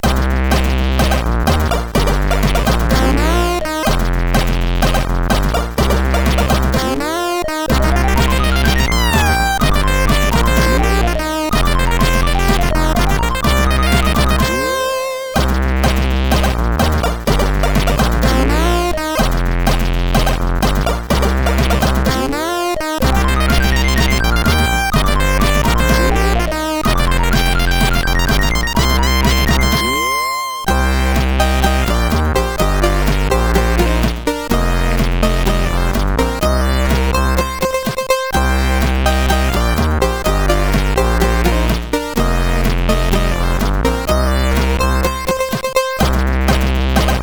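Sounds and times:
farting synthesized on a CSG 8580R5 chip: 0:00.0 - 0:14.8, 0:15.4 - 0:47.2.

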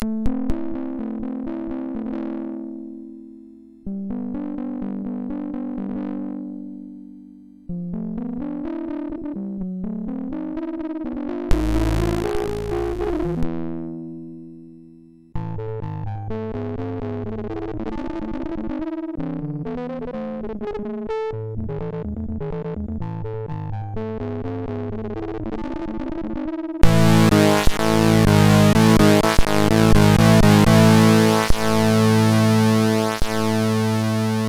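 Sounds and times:
8-bit chiptune music: 0:11.5 - 0:13.4, 0:26.8 - 0:34.4.

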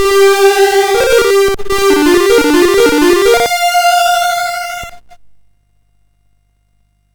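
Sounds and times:
SID chip game music: 0:00.0 - 0:05.2.

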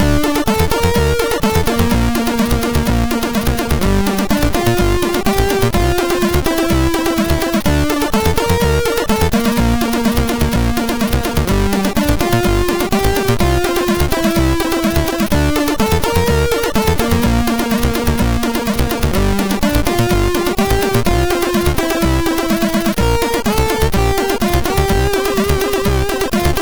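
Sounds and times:
MOS6581R2 SID sound chip music: 0:00.0 - 0:26.6.

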